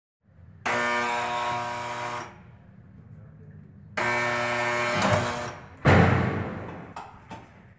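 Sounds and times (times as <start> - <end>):
neighbours' door being cut: 0.6 - 2.4, 4.0 - 6.9.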